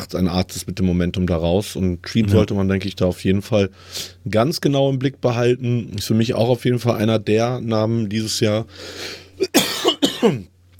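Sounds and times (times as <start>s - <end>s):
speech: 0.0s - 9.6s, 10.2s - 10.5s
harsh raspy coughing fit: 9.4s - 10.5s.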